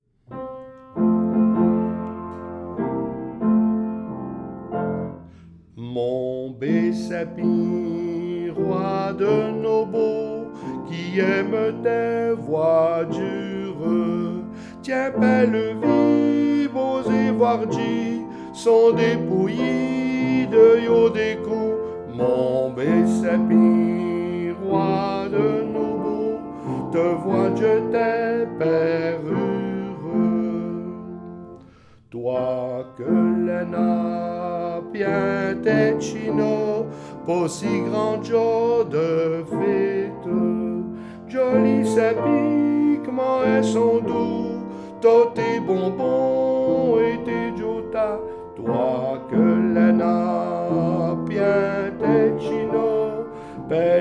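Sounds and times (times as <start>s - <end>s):
piano: 0.0s - 53.9s
person singing a carol: 5.7s - 53.9s.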